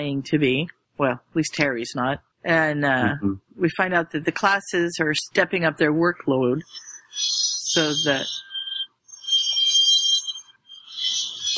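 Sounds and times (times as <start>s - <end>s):
speech: 0.0s - 8.4s
alarm ringing with high-pitched warbling electronic tones: 5.6s - 11.5s.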